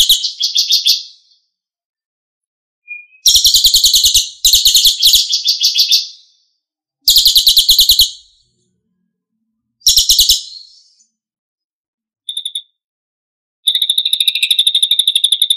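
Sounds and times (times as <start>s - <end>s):
Lesser Racket-tailed Drongo song with harsh trills and buzzy rattle: 0.0s - 1.5s, 2.8s - 8.6s, 9.8s - 11.2s, 13.6s - 15.5s.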